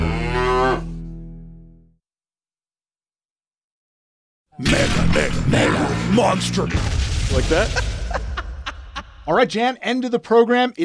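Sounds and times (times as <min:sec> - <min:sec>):
cow mooing: 0:00.0 - 0:01.0
speech: 0:04.6 - 0:07.9, 0:09.3 - 0:10.8
laughter: 0:07.5 - 0:09.4.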